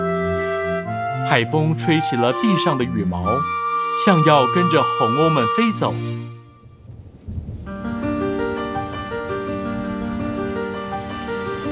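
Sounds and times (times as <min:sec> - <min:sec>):
sustained musical tones: 0:00.0 - 0:06.8, 0:07.8 - 0:11.7
speech: 0:01.3 - 0:06.4
rain turning into a downpour on an island: 0:06.6 - 0:11.7.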